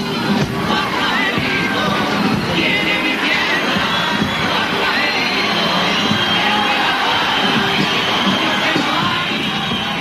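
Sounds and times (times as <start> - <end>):
large indoor theatre audience whistling: 0.2 - 9.9.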